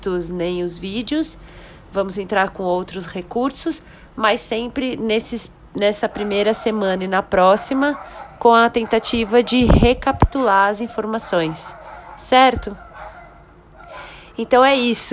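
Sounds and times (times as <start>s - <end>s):
speech: 0.0s - 12.8s, 14.4s - 15.1s
dog barking: 6.0s - 14.1s.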